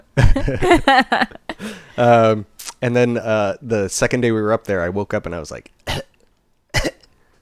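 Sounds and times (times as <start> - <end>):
speech: 0.4 - 6.1
person imitating a small cough with their voice: 6.8 - 7.1.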